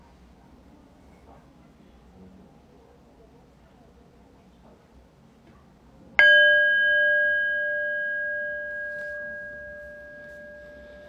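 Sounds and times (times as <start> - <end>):
faint noise: 0.0 - 11.0
meditation bell struck to end a formal meditation practice: 6.2 - 11.0.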